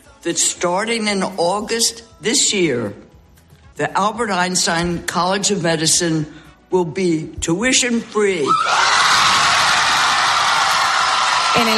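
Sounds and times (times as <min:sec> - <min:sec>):
speech: 0:00.2 - 0:03.0, 0:03.8 - 0:09.1, 0:11.6 - 0:11.7
students screaming and whooping: 0:08.4 - 0:11.7
large crowd of students cheering: 0:08.5 - 0:11.7
dense applause from students: 0:09.2 - 0:11.7.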